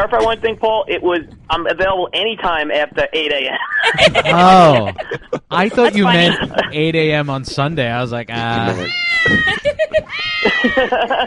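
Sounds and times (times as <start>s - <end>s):
speech: 0.0s - 11.2s
laughter: 3.5s - 7.2s, 8.1s - 11.2s
kittens meowing: 8.5s - 11.0s.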